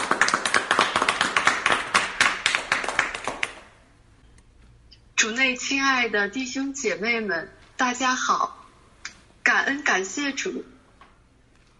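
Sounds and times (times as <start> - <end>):
audience clapping to welcome a speaker: 0.0 - 3.8
speech: 5.5 - 8.6, 9.5 - 10.7.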